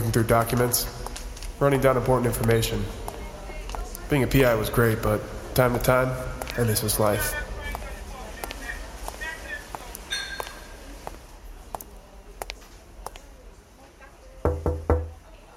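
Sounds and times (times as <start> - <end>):
low busy background: 0.0 - 15.5
speech: 0.2 - 1.0, 1.6 - 3.0, 4.1 - 7.4
firm knocks on a door: 14.4 - 15.2.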